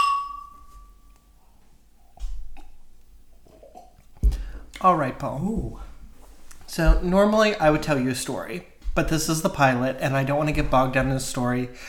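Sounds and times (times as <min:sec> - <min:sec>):
drinking glasses clinking in a toast: 0:00.0 - 0:00.9
speech: 0:04.8 - 0:05.8, 0:06.8 - 0:11.8.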